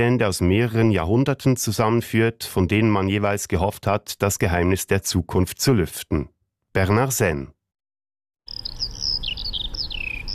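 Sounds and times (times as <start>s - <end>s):
speech: 0.0s - 7.6s
Eurasian skylark singing while gliding down to earth: 8.5s - 10.3s.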